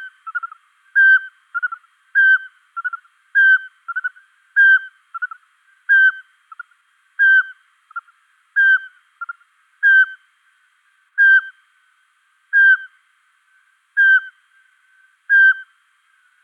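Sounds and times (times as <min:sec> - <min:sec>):
Eurasian pygmy owl song in Luxembourg: 0:00.0 - 0:06.6, 0:07.2 - 0:10.2, 0:11.2 - 0:11.6, 0:12.5 - 0:12.9, 0:14.0 - 0:14.4, 0:15.3 - 0:15.8.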